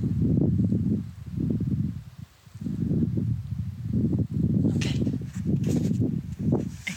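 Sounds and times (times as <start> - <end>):
outdoor wind gusting in fine weather with a few clouds: 0.0 - 6.9
soft rustle of leaves in wind: 5.6 - 6.9.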